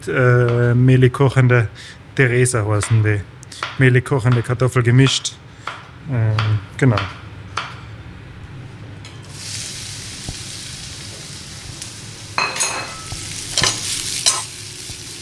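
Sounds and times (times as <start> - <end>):
speech: 0.0 - 5.4, 6.1 - 7.2
carrots tossed in butter with pepper sizzling in a pan: 9.2 - 15.2.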